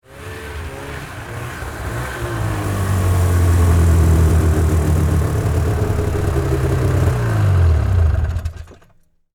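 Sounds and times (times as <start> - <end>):
Yamaha Exciter 440 snowmobile approaching: 0.0 - 8.7.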